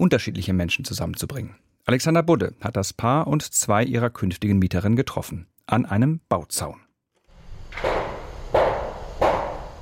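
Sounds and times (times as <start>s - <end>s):
speech: 0.0s - 6.8s
hammer blows on a construction site: 7.6s - 9.7s.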